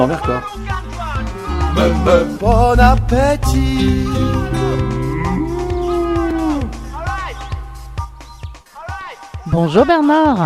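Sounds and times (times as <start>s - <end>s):
speech: 0.0s - 0.9s, 1.8s - 4.8s, 9.6s - 10.4s
steady rhythmic ticking pulse: 2.3s - 5.9s
cows mooing: 4.8s - 6.8s.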